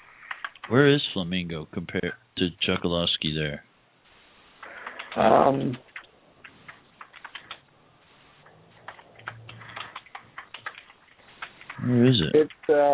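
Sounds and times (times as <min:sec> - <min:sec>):
typing on a computer keyboard: 0:00.2 - 0:00.8, 0:04.6 - 0:07.6, 0:08.8 - 0:12.9
speech: 0:00.7 - 0:03.7, 0:05.2 - 0:05.9, 0:11.9 - 0:12.9.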